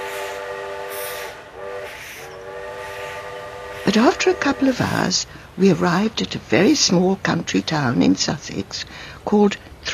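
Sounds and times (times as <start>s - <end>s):
train whistle blaring: 0.0s - 5.0s
train rolling along the railway: 0.0s - 9.9s
speech: 3.9s - 9.9s.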